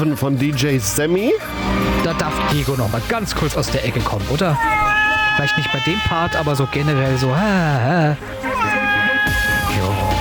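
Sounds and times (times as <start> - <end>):
speech: 0.0 - 8.8
cat meowing: 4.5 - 7.5, 8.4 - 10.1.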